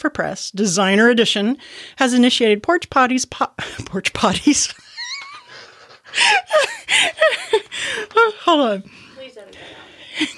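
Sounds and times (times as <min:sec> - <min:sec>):
speech: 0:00.0 - 0:04.8, 0:06.1 - 0:10.3
laughter: 0:04.4 - 0:08.8, 0:09.6 - 0:10.3
heavy rasping breathing into the microphone: 0:05.5 - 0:10.3.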